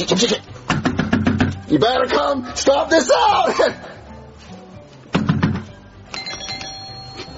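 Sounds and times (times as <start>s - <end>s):
speech: 0.0s - 0.5s, 1.7s - 4.0s
knocking on a door: 0.7s - 1.6s, 5.1s - 5.7s
electronic doorbell chime: 6.1s - 7.3s.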